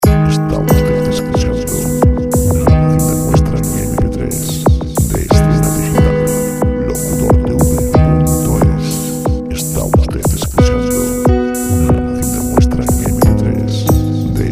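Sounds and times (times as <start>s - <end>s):
slow chillout music at 91 bpm: 0.0s - 14.5s.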